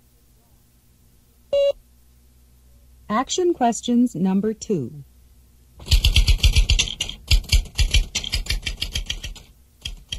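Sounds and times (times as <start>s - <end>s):
speech: 3.1s - 5.1s
typewriter keys clacking: 5.8s - 10.1s.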